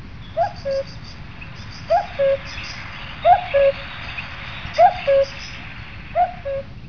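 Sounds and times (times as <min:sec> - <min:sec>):
cuckoo calling: 0:00.2 - 0:06.8.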